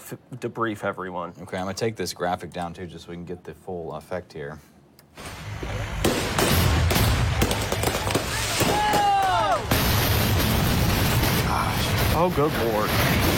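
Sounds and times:
speech: 0.1s - 5.8s, 12.2s - 13.3s
fireworks barrage going off inside a truck: 5.3s - 13.3s
whistling firework screamers: 8.0s - 10.1s.

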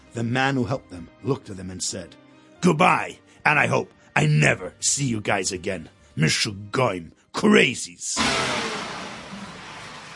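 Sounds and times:
speech: 0.2s - 8.8s
car revving and pulling away from a petrol station: 8.2s - 10.1s.

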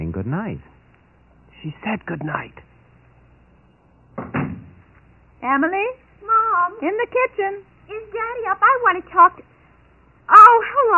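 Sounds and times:
speech: 0.2s - 0.8s, 1.6s - 2.7s, 5.4s - 9.5s, 10.3s - 10.9s
door closing: 4.2s - 4.8s.

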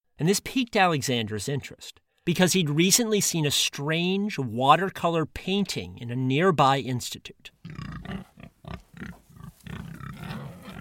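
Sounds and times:
speech: 0.2s - 8.5s
pig grunting: 7.6s - 10.8s.

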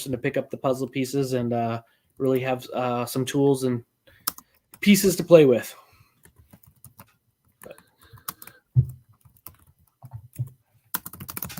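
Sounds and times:
speech: 0.0s - 3.9s, 4.8s - 5.8s
clicking of keys on a computer keyboard: 4.2s - 4.8s, 6.2s - 11.5s.

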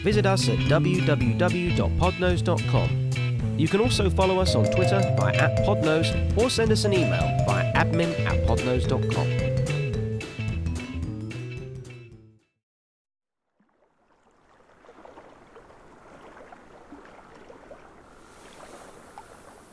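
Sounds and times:
speech: 0.0s - 9.4s
short music sting: 4.4s - 9.9s
water sloshing and lapping around a boat: 13.5s - 19.7s.

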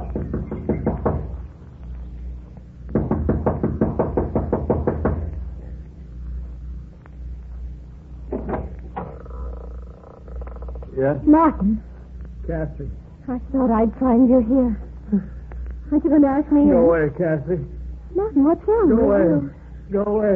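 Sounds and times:
young woman knocking impatiently on the front door of a small mountain lodge: 0.0s - 1.4s, 2.9s - 5.4s, 8.3s - 9.1s
speech: 11.0s - 11.9s, 12.5s - 20.3s.

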